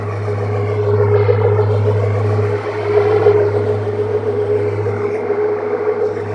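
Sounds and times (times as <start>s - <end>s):
machinery: 0.0s - 6.3s.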